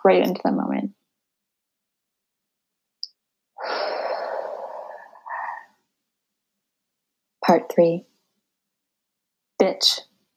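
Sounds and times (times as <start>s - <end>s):
speech: 0.0s - 1.0s, 7.5s - 8.1s, 9.6s - 10.1s
slow deep breath: 3.6s - 5.9s.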